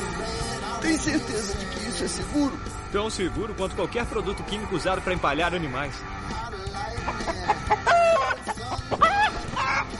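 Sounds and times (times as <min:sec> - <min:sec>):
speech: 0:00.8 - 0:06.3
laughter: 0:06.7 - 0:09.9
chicken clucking: 0:06.8 - 0:09.9.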